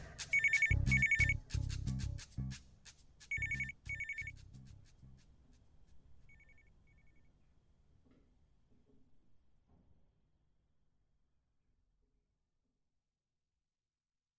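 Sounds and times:
telephone ringing: 0:00.3 - 0:01.4, 0:03.4 - 0:04.3, 0:06.3 - 0:07.3.

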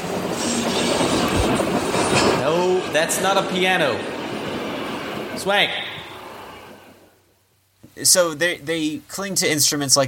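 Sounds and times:
moving train wheels rumbling on track: 0:00.0 - 0:07.1
speech: 0:02.5 - 0:04.1, 0:05.4 - 0:05.8, 0:08.0 - 0:10.0.

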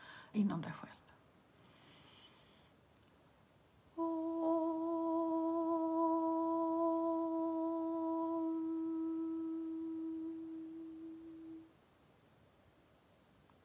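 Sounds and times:
speech: 0:00.3 - 0:01.0
Om chanted aloud in a high tone: 0:04.0 - 0:11.7.

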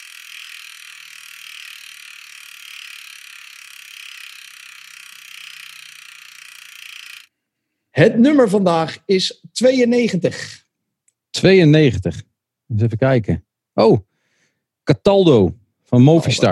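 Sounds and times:
spinning prize wheel ratchet whirring: 0:00.0 - 0:07.3
speech: 0:08.0 - 0:10.6, 0:11.4 - 0:14.1, 0:14.9 - 0:16.5.

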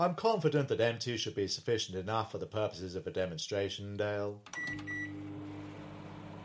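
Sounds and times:
speech: 0:00.0 - 0:05.1
transformer microwave beeping: 0:04.5 - 0:06.4.

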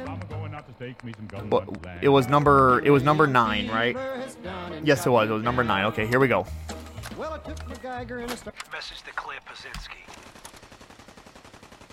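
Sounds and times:
speech: 0:00.8 - 0:10.4
video game gunfire: 0:09.7 - 0:11.9.

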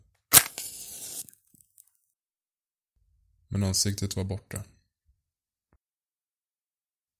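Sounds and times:
match struck with a sharp scratch: 0:00.3 - 0:01.5
speech: 0:03.5 - 0:04.8.

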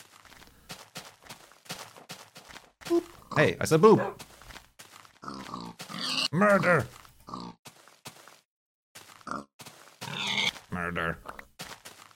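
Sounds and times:
speech: 0:02.9 - 0:04.2, 0:06.3 - 0:07.0, 0:10.9 - 0:11.3
pig grunting and oinking: 0:05.2 - 0:07.6, 0:09.2 - 0:10.7.

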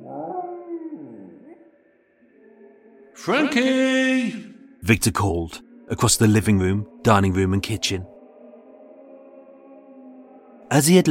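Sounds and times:
small black Pomeranian dog whimpering: 0:00.0 - 0:01.7
speech: 0:03.2 - 0:08.1, 0:10.7 - 0:11.1.

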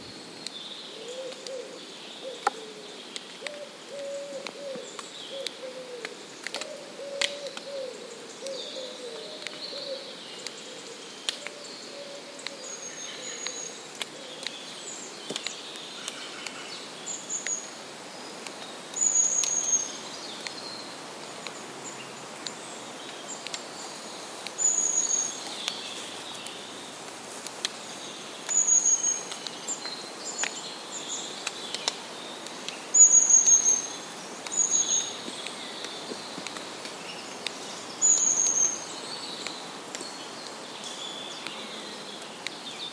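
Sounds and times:
birds singing in an ancient woodland: 0:00.0 - 0:26.9, 0:27.7 - 0:42.9
insects in a woodland: 0:00.0 - 0:42.9
soft low bird cooing in a woodland: 0:01.0 - 0:02.8, 0:03.4 - 0:10.1, 0:11.5 - 0:12.6
faint crackles: 0:04.4 - 0:07.7, 0:10.4 - 0:11.7, 0:12.3 - 0:42.9.

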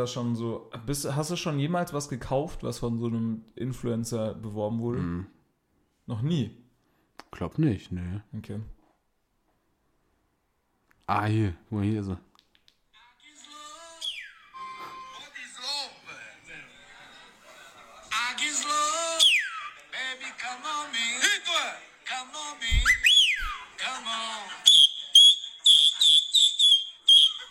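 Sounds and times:
speech: 0:00.0 - 0:05.4, 0:06.1 - 0:06.6, 0:07.3 - 0:08.8, 0:11.1 - 0:12.3
voices: 0:13.0 - 0:24.7
man whistling loudly and shrilly: 0:14.0 - 0:15.2, 0:19.2 - 0:19.7, 0:22.8 - 0:23.6, 0:24.7 - 0:27.4.

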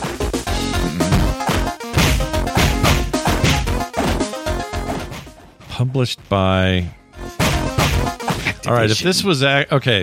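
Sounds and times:
busy beat 'em up video game music: 0:00.0 - 0:10.0
punch sound effects from a beat 'em up video game: 0:00.9 - 0:04.2, 0:07.4 - 0:08.4
speech: 0:05.8 - 0:07.0, 0:08.6 - 0:10.0.

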